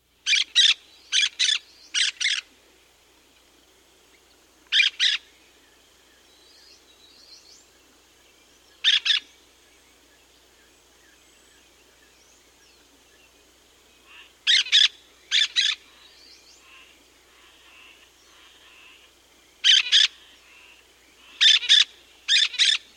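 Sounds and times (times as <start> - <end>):
Olive-throated parakeet calling in South America: 0.2 - 2.5, 4.7 - 5.3, 8.8 - 9.3, 14.1 - 16.0, 19.6 - 22.9.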